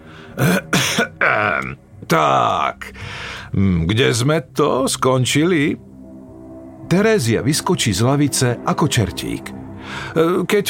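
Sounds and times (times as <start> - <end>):
speech: 0.4 - 0.7, 1.6 - 2.9, 3.5 - 5.9, 6.9 - 10.6
deliberate self-important throat clearing: 0.4 - 1.8.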